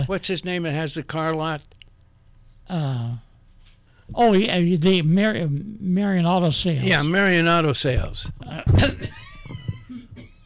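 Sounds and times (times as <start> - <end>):
speech: 0.0 - 1.8, 2.7 - 3.3, 4.1 - 9.6
single short loud cough: 9.9 - 10.4.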